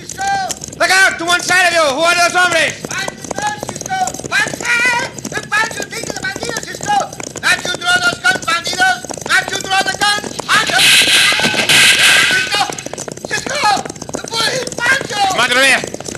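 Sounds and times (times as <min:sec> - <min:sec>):
galloping hooves of a stampeding cattle herd: 0:00.0 - 0:16.1
speech: 0:01.2 - 0:03.1.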